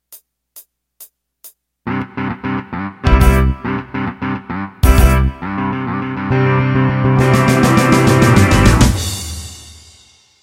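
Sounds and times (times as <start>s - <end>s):
blues shuffle music: 0.0s - 9.6s.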